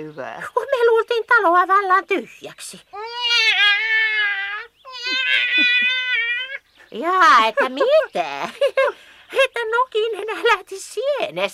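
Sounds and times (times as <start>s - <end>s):
speech: 0.0s - 3.7s, 5.3s - 6.0s, 6.9s - 11.5s
cat meowing: 3.0s - 6.6s
laughter: 5.0s - 6.2s, 6.9s - 9.0s.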